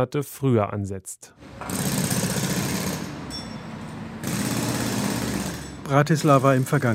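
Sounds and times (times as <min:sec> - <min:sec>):
speech: 0:00.0 - 0:02.0, 0:05.9 - 0:06.9
construction machinery drone with rapid rattling: 0:01.4 - 0:06.9.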